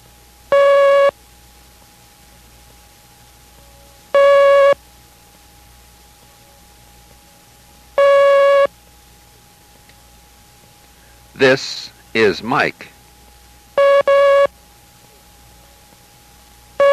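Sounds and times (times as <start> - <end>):
Morse code dashes for the letter T in a code lesson: 0.5 - 1.2, 4.2 - 4.8, 8.0 - 8.7, 13.8 - 14.5, 16.8 - 16.9
speech: 11.4 - 12.9.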